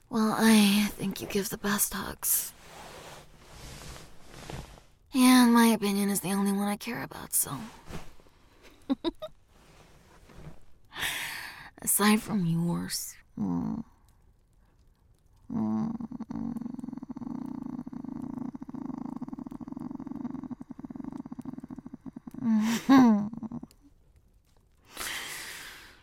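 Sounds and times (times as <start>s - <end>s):
speech: 0.1s - 2.6s, 5.1s - 8.0s, 9.0s - 9.3s, 11.8s - 13.9s, 15.5s - 16.6s
person imitating a cat purring: 15.5s - 23.8s.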